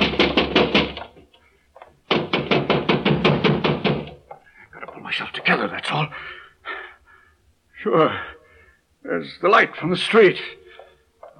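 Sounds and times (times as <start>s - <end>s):
urgent pounding on a door: 0.0s - 1.2s, 2.1s - 4.3s
speech: 5.5s - 6.4s, 7.8s - 8.3s, 9.0s - 10.6s.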